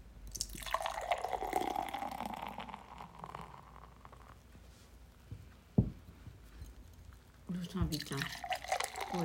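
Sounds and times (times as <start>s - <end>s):
Kirin Ichiban Shibori beer poured into a glass: 0.3s - 4.4s, 7.9s - 9.2s
speech: 7.6s - 8.5s.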